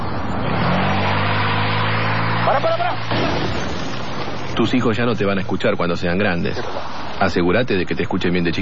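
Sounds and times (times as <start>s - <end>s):
car pulling away as clutch is released and accelerator pressed: 0.1s - 5.3s
speech: 4.6s - 8.6s.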